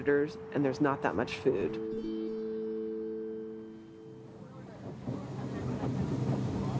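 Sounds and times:
speech: 0.0 - 2.2
boat engine droning while traveling upstream on river: 0.0 - 6.7
wind buffeting the microphone: 4.2 - 6.7.

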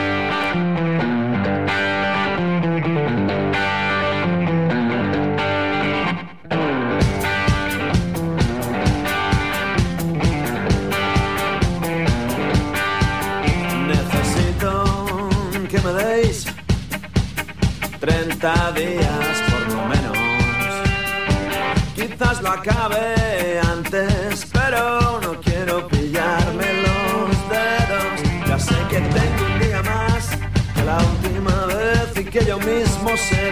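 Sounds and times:
gritty distorted guitar in a blues rock song: 0.0 - 33.4
speech: 0.6 - 0.8
steady driving drumbeat in a blues rock song: 7.0 - 33.4.

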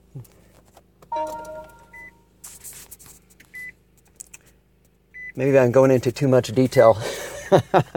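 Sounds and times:
car electronic beeps and chimes on shutting off: 1.1 - 2.2
speech: 1.2 - 1.5, 5.4 - 7.9.

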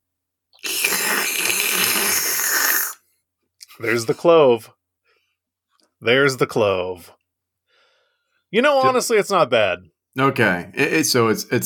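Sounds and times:
person slurping pumpkin ale: 0.6 - 3.0
speech: 3.8 - 4.8, 6.0 - 7.2, 8.5 - 11.6.

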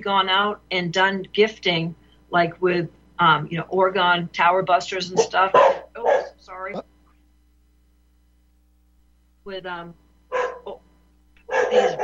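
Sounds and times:
speech: 0.0 - 6.9, 9.5 - 10.4, 11.7 - 12.0
dog barking in short loud bursts: 5.2 - 6.4, 10.3 - 10.7, 11.5 - 12.0.

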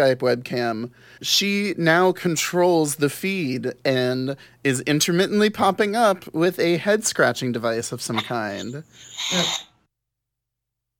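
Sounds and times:
speech: 0.0 - 9.7
toy walkie-talkie burst of hissy crackly electronic noise: 8.2 - 9.7.

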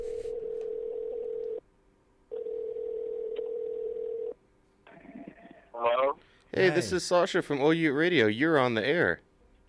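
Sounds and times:
telephone tone buzzing as a phone call is placed: 0.0 - 1.6, 2.3 - 4.4
speech: 6.6 - 9.2.

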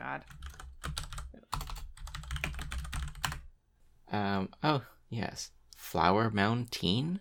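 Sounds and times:
speech: 0.2 - 1.0, 4.1 - 7.1
typing on a clacky computer keyboard: 0.3 - 3.5.

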